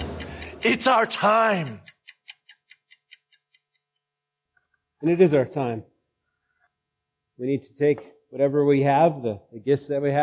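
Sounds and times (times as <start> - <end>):
rapid crisp ticks: 0.0 - 4.5
speech: 0.6 - 1.9, 5.0 - 5.9, 7.4 - 10.2.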